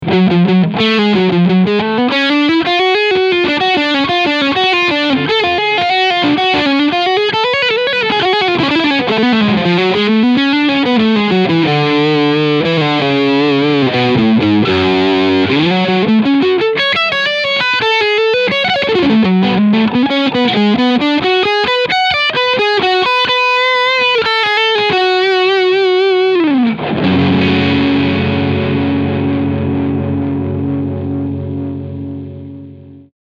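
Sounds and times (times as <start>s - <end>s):
overdriven guitar on bridge pickup: 0.0s - 33.1s.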